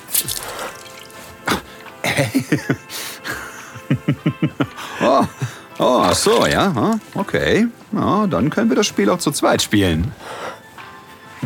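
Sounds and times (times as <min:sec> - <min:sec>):
hand splashing soapy water in a sink: 0:00.0 - 0:01.4
laughter: 0:01.5 - 0:06.0
speech: 0:02.2 - 0:03.1, 0:03.9 - 0:10.5.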